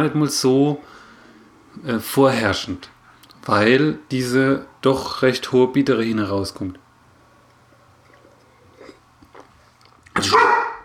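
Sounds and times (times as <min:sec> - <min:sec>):
speech: 0:00.0 - 0:01.0, 0:01.8 - 0:06.8
dog barking: 0:10.2 - 0:10.8.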